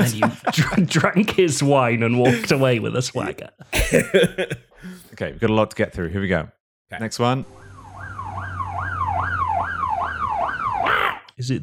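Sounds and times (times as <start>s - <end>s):
laughter: 0.0s - 1.0s, 3.8s - 5.1s
speech: 0.0s - 7.6s, 11.4s - 11.6s
police sirens wailing in TV theme music: 7.5s - 11.1s.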